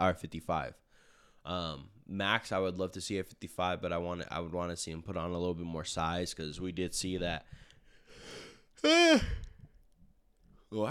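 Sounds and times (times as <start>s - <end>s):
speech: 0.0s - 0.8s, 1.4s - 7.6s, 8.2s - 9.5s
drawn-out yawn with breathy inhale and voiced groan: 8.8s - 9.6s.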